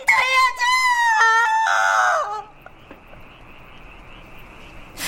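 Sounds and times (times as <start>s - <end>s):
woman wailing and screaming in grief: 0.0s - 2.5s.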